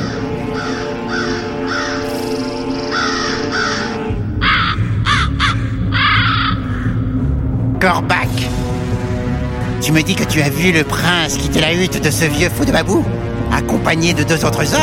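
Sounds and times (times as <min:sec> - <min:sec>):
raven cawing: 0:00.0 - 0:07.4
low steady ambient drone: 0:00.0 - 0:12.1
speech: 0:07.8 - 0:08.3, 0:09.8 - 0:14.8.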